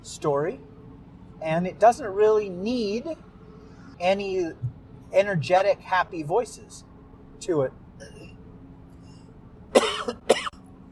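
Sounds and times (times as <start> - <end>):
speech: 0.0 - 0.7, 1.4 - 3.3, 4.0 - 8.3
person coughing: 9.8 - 10.6.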